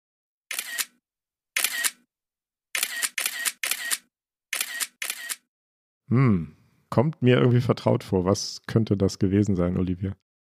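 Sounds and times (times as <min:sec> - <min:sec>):
smartphone camera shutter clicks: 0:00.5 - 0:00.9, 0:01.6 - 0:02.0, 0:02.8 - 0:05.5
speech: 0:06.1 - 0:10.2.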